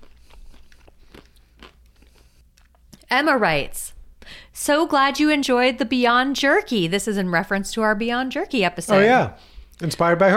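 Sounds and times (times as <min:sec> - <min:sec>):
crunchy snack being chewed with sharp crackling bites: 0:00.0 - 0:03.1
low steady hum: 0:00.0 - 0:10.0
speech: 0:03.1 - 0:03.9, 0:04.6 - 0:10.3.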